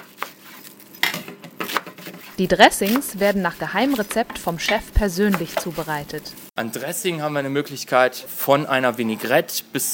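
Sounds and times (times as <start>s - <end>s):
faint kitchen clatter of vegetables being washed and chopped: 0.0s - 6.5s
speech: 2.4s - 9.9s.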